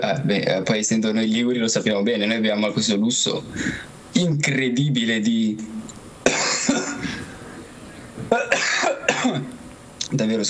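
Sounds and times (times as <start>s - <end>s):
speech: 0.0s - 6.5s, 10.2s - 10.4s
person coughing harshly: 6.3s - 7.3s, 8.3s - 9.5s.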